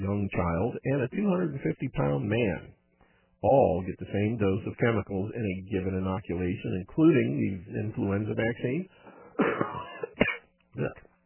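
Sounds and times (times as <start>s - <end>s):
speech: 0.0s - 2.8s, 3.4s - 11.0s
person coughing: 9.3s - 11.0s
person clearing throat: 9.4s - 11.1s.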